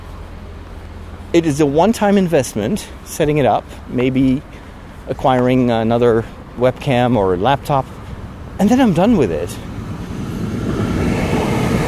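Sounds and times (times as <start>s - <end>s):
speech: 1.3s - 8.0s, 8.6s - 9.7s
train passing on nearby tracks: 9.6s - 11.8s.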